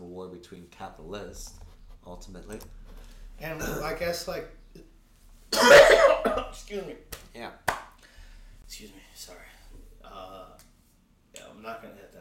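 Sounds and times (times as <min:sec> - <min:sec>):
speech: 0:00.3 - 0:04.9, 0:05.5 - 0:07.8, 0:08.7 - 0:10.4, 0:11.6 - 0:12.2
man coughing: 0:03.5 - 0:04.0, 0:05.5 - 0:06.6.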